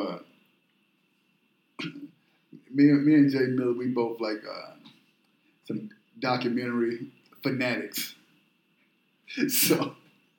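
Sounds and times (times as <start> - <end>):
speech: 1.8 - 2.0, 2.8 - 4.8, 5.7 - 8.2, 9.3 - 10.0
person coughing: 1.8 - 2.1.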